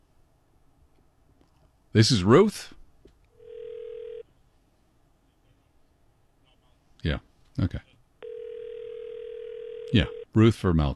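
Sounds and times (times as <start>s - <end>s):
speech: 2.0s - 2.8s, 7.0s - 7.9s, 9.9s - 10.9s
steady telephone ringback tone: 3.4s - 4.2s, 8.2s - 10.3s.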